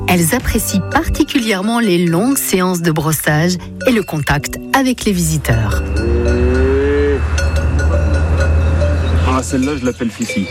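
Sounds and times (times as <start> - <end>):
speech: 0.1 - 6.2, 9.4 - 10.5
Hérens cow mooing: 5.7 - 9.2.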